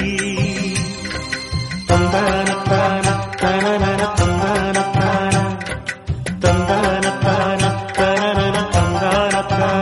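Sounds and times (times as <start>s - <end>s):
old Telugu melody ringtone: 0.2s - 9.8s.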